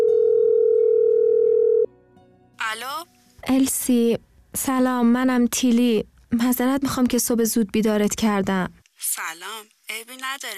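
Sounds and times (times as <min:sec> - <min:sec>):
telephone line tone during a call being placed: 0:00.0 - 0:01.9
speech: 0:03.5 - 0:10.5.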